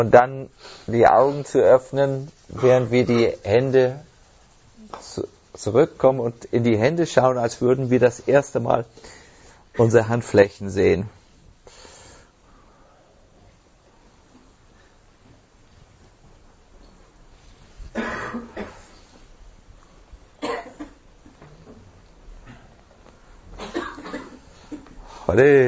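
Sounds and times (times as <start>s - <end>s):
speech: 0.0s - 4.1s, 4.9s - 9.2s, 9.8s - 11.2s, 25.4s - 25.6s
person coughing and clearing throat: 17.9s - 18.9s, 20.4s - 21.0s, 23.6s - 24.5s.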